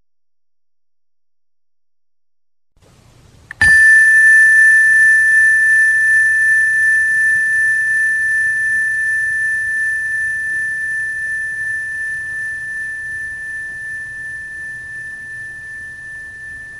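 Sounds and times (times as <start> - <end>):
single bell struck during a meditation session: 3.5 - 16.7.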